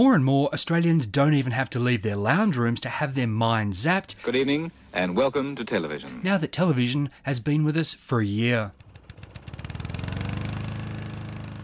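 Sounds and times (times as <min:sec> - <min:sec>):
speech: 0:00.0 - 0:08.8
brand new petrol lawn mower engine with automatic accelerator running in a backyard: 0:08.7 - 0:11.6.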